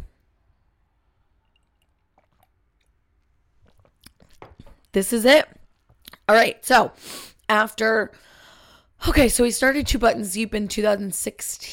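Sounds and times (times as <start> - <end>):
person sipping a drink: 1.3 - 4.9
slurping and swallowing: 1.4 - 4.9
lip smacks: 1.5 - 4.9
speech: 5.0 - 5.6, 6.3 - 8.3, 9.0 - 11.7.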